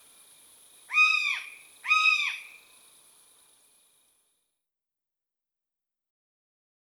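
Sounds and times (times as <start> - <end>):
common buzzard mewing calls: 0.9 - 2.6.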